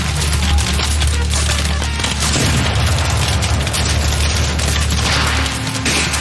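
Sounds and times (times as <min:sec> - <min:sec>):
crackling gunfire: 0:00.0 - 0:06.1
heavy cannon fire booming: 0:01.9 - 0:06.1.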